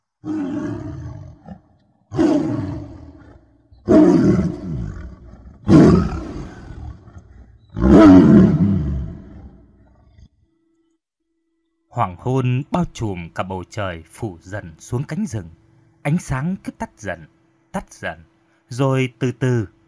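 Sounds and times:
speech: 0.2s - 1.0s, 12.0s - 19.8s
tiger growling and roaring: 0.2s - 10.4s.

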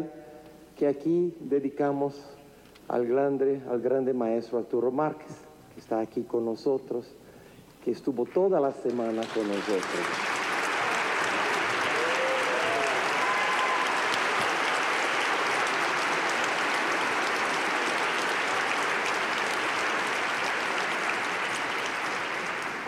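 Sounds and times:
speech: 0.8s - 7.2s, 7.8s - 10.4s
audience applause at a live concert: 8.9s - 22.8s.

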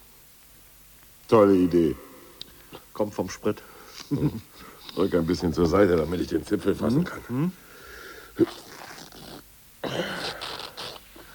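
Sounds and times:
speech: 1.3s - 2.0s, 3.0s - 7.6s, 8.4s - 8.7s
cloth tearing apart like paper: 8.4s - 9.4s.

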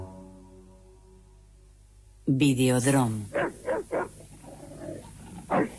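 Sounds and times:
speech: 2.3s - 3.4s
white attack-trained dog barking: 3.3s - 4.2s, 5.5s - 5.7s.

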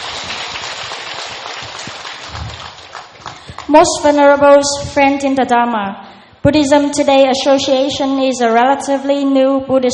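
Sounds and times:
audience applause at a Buddhist gathering and film screening: 0.0s - 3.7s
speech: 3.7s - 9.9s.

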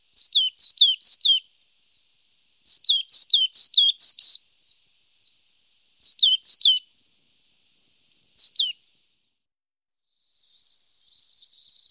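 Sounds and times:
coal tit faint twitters: 0.0s - 1.4s, 2.6s - 5.3s, 6.0s - 6.8s, 8.3s - 9.2s, 10.3s - 11.8s.

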